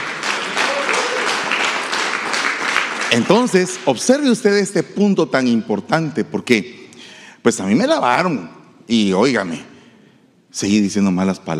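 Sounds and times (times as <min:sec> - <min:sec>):
audience applauding: 0:00.0 - 0:04.3
speech: 0:03.1 - 0:06.8, 0:07.4 - 0:09.7, 0:10.5 - 0:11.5.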